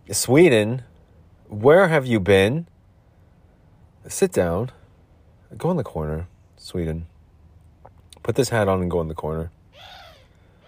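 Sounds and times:
low rumble: 0.0 - 10.6
speech: 0.1 - 0.9, 1.5 - 2.7, 4.0 - 4.8, 5.5 - 7.1, 8.2 - 10.0
single short harsh raspy bird squawk: 9.7 - 10.6.

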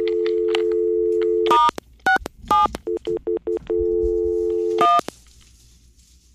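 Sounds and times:
steady telephone dial tone: 0.0 - 1.6, 2.9 - 5.0.

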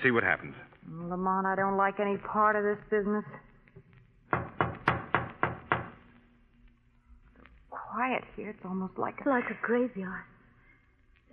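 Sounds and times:
speech: 0.0 - 3.5, 7.9 - 10.3
knocking on a wooden front door: 4.3 - 6.0.

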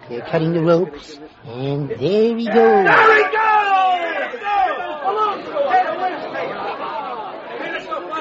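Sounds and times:
speech: 0.1 - 3.5
large crowd cheering wildly: 2.3 - 8.1.

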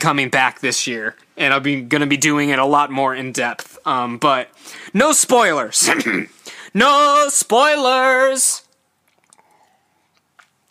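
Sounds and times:
speech: 0.0 - 8.6
wet mouth clicks: 8.7 - 10.7
person sipping cold water: 8.9 - 10.7
small swallow: 9.0 - 10.7.

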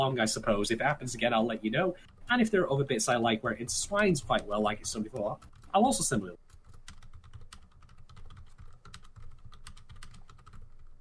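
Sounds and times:
speech: 0.0 - 6.4
typing on a computer keyboard: 3.9 - 11.0.

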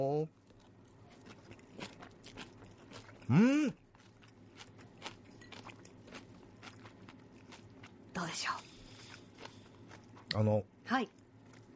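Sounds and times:
speech: 0.0 - 0.4, 3.3 - 3.8
crunchy chewing of pea shoot and wakame salad: 0.4 - 10.4, 11.2 - 11.7
brief hummed vocal sound: 3.3 - 3.8.

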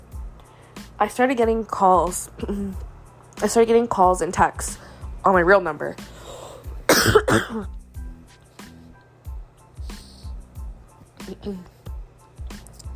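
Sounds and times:
speech: 1.0 - 6.2, 7.0 - 7.8, 11.4 - 11.7
person clearing throat: 6.9 - 7.8
person coughing hard: 6.9 - 7.8.

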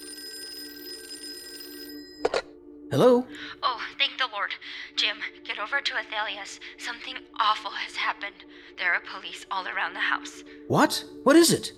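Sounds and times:
telephone ringing in a double trill: 0.0 - 2.6
speech: 2.9 - 11.7.

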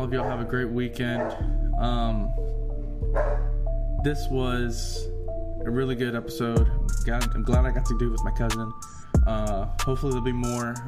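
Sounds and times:
speech: 0.0 - 10.8
dog barking: 0.2 - 0.5, 1.1 - 1.5, 3.1 - 3.5.

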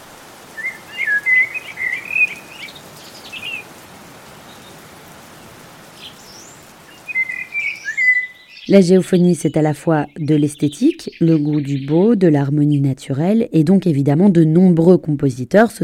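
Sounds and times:
steady hiss: 0.0 - 8.6
birds singing in warbling phrases at dawn: 0.4 - 3.8, 4.4 - 4.9, 5.8 - 12.8
speech: 8.7 - 15.8.

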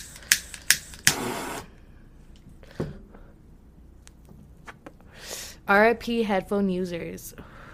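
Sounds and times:
torch lighter clicking, failing to light: 0.0 - 1.5
short hissing burst of gas from a torch lighter: 0.0 - 1.7
speech: 5.7 - 7.5.

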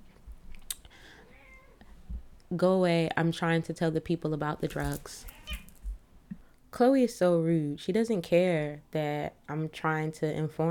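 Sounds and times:
cat meowing loudly: 1.3 - 1.8, 5.3 - 5.8
speech: 2.5 - 5.3, 6.8 - 10.6.

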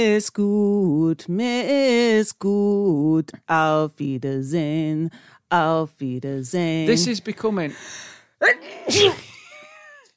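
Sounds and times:
speech: 0.2 - 9.3
sneeze: 8.6 - 9.3.

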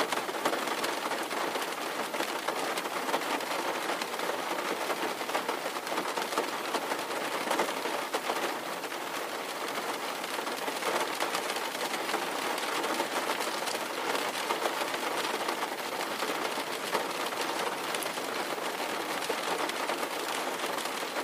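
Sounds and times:
steady rain striking a surface: 0.0 - 21.2.

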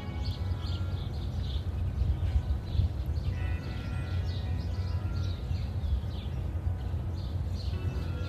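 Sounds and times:
several different bird species chirping and calling: 0.0 - 8.2.

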